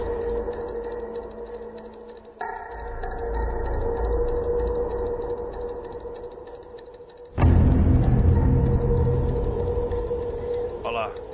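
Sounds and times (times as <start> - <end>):
rapid clock-like ticking: 0.0 - 11.3
sustained orchestral drone: 7.4 - 11.3.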